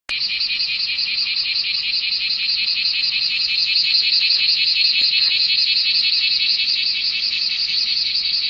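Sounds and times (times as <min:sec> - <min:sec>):
bear cicada buzzing: 0:00.1 - 0:08.4.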